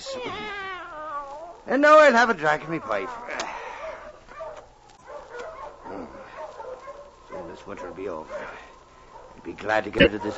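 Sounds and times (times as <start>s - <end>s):
speech: 0.1s - 0.4s, 1.6s - 3.3s, 7.6s - 8.6s, 9.4s - 10.3s
several dogs barking and yipping in winter ice and snow: 2.7s - 10.3s.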